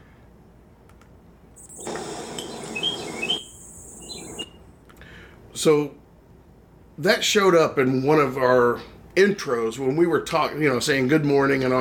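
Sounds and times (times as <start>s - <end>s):
birds chirping outdoors: 1.6s - 4.6s
speech: 5.6s - 6.0s, 7.0s - 11.7s.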